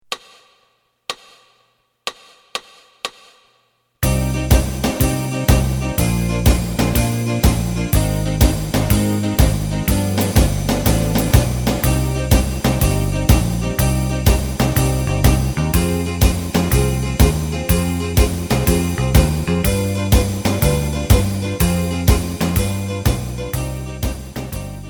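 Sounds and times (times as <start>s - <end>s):
lead guitar: 4.0s - 24.8s.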